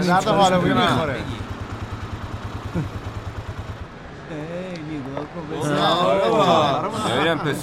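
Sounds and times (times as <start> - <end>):
speech: 0.0 - 1.4, 2.8 - 3.0, 4.3 - 7.6
motorcycle engine idling: 0.0 - 5.0.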